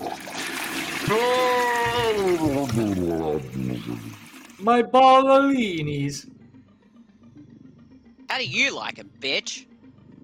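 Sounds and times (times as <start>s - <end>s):
person vocally imitating a toilet flushing with a gurgling whoosh: 0.0s - 4.6s
speech: 1.1s - 6.4s, 8.4s - 9.7s.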